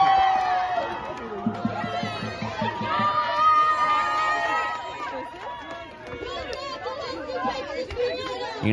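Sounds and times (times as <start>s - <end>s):
dense excited crowd shouting and cheering: 0.0s - 8.7s.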